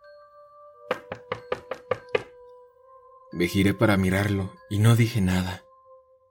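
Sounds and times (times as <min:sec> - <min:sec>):
sharp knocks on a car window: 0:00.9 - 0:02.3
speech: 0:03.4 - 0:05.6.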